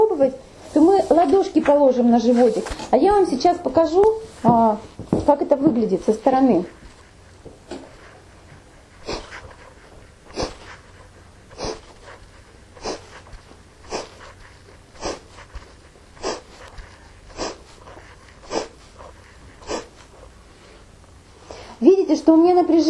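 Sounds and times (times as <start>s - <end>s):
speech: 0.2s - 6.8s
normal inhale with forceful accented exhale: 4.2s - 21.8s.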